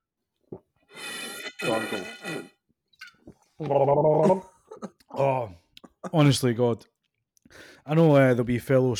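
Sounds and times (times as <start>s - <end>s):
slurping hot coffee: 0.9s - 2.6s
speech: 1.6s - 2.5s, 3.6s - 4.5s, 5.2s - 6.9s, 7.5s - 8.9s.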